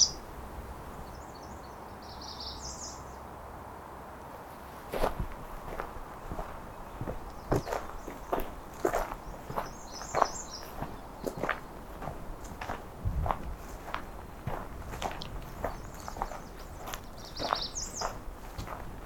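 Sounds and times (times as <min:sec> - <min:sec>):
American Redstart song: 0:00.0 - 0:00.3, 0:00.9 - 0:03.3, 0:06.2 - 0:12.1, 0:15.0 - 0:18.8
steady outdoor noise: 0:00.0 - 0:19.0
crunching footsteps: 0:04.4 - 0:19.0.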